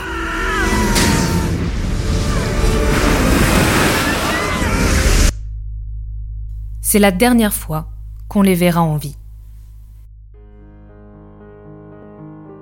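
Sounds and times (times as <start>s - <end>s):
huge ocean wave crashing: 0.0s - 5.3s
speech: 6.9s - 9.2s.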